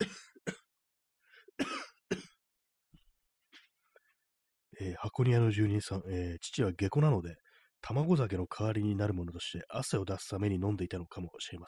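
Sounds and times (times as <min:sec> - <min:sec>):
harsh coughs: 0:00.0 - 0:00.7, 0:01.6 - 0:02.4
breaths: 0:01.2 - 0:01.6, 0:07.4 - 0:07.8
speech: 0:04.8 - 0:11.6.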